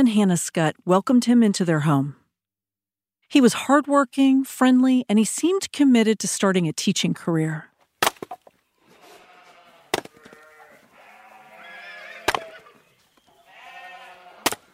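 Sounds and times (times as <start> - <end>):
speech: 0.0 - 2.2, 3.3 - 7.7
axe splitting wood in a barn: 8.0 - 8.5, 9.9 - 10.1, 12.2 - 12.4, 14.4 - 14.7
sheep or goats bleating: 8.8 - 14.7.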